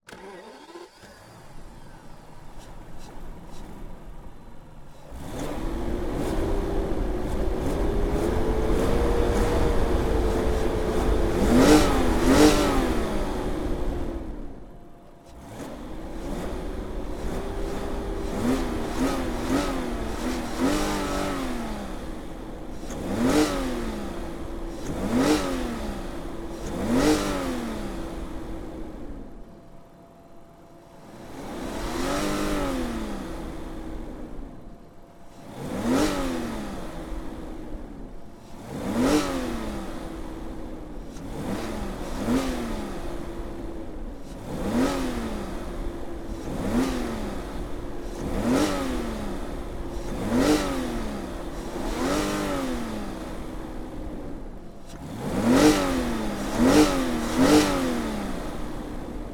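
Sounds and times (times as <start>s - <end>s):
BMW 760i engine starting and revving strongly: 0.0s - 59.3s.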